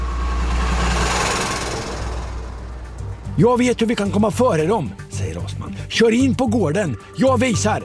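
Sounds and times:
van engine roaring as it reverses onto the road and speeds past: 0.0 - 5.9
speech: 3.4 - 7.8.

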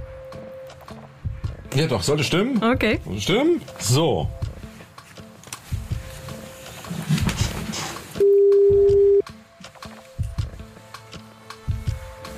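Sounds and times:
music: 0.0 - 12.3
speech: 1.7 - 4.4
short beeps and clicks: 8.2 - 9.2
telephone line tones as a number is dialled for a radio call-in: 8.2 - 9.2.

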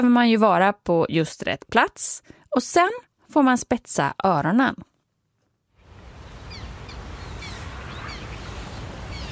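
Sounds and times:
speech: 0.0 - 4.9
steady outdoor hiss at Kristianstads vattenrike Sweden: 2.5 - 9.3
black terns calling at Kristianstads vattenrike Sweden: 6.5 - 8.5.

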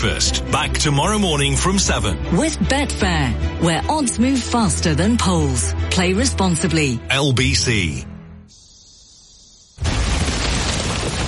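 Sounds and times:
speech: 0.0 - 8.1
high-pitched whine: 8.5 - 9.8
bomb explosion: 9.8 - 11.2.

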